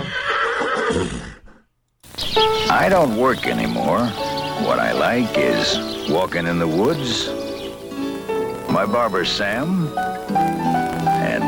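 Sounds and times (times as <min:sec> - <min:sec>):
horse whinnying: 0:00.0 - 0:01.6
speech: 0:00.9 - 0:01.3, 0:02.4 - 0:07.5, 0:08.7 - 0:10.8.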